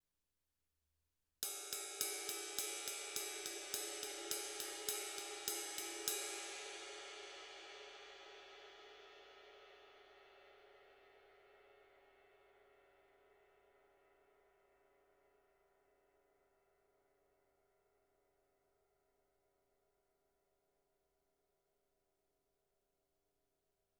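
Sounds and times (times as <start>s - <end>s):
rock ride cymbal: 1.4s - 8.6s.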